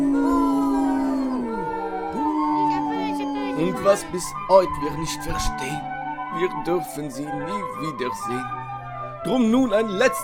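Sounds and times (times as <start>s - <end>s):
wolves howling together: 0.0s - 4.9s
speech: 3.6s - 8.6s, 9.2s - 10.2s.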